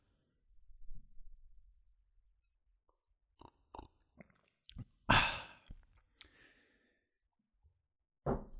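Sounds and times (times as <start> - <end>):
sipping and swallowing carrot juice: 3.4 - 6.4.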